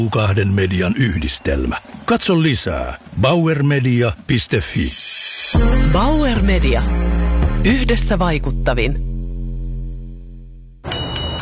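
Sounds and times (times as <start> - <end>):
speech: 0.0 - 9.1
bright clinking chimes from a jingle in a bank's radio advert: 10.8 - 11.4.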